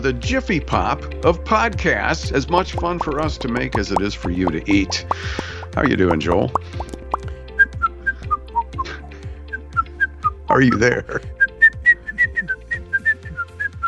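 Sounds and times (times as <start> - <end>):
speech: 0.0 - 7.0, 10.5 - 11.4
whistled bouncy staccato melody: 2.7 - 10.4, 11.4 - 13.8.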